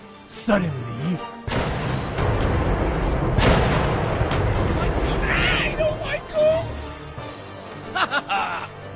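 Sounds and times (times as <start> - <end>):
speech: 0.3 - 1.7
heavy cannon booms: 1.5 - 5.8
laughter: 7.8 - 8.8.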